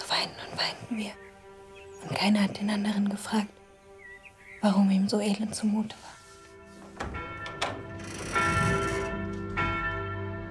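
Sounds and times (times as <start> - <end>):
speech: 0.2 - 1.3, 2.0 - 3.6, 4.6 - 6.2
church bells ringing in overlapping peals: 7.2 - 10.4.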